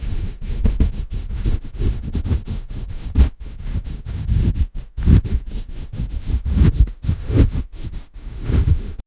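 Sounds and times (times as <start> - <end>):
realistic scratching: 0.0 - 9.0.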